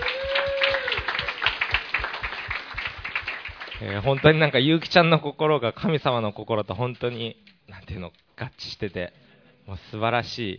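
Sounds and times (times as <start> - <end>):
audience applauding: 0.0 - 4.8
speech: 3.8 - 10.5.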